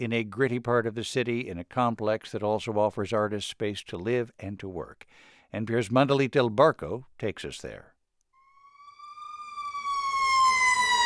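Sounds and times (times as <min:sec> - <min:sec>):
speech: 0:00.0 - 0:07.9
wailing emergency siren on Western Avenue in East Hollywood, Los Angeles: 0:08.4 - 0:11.0.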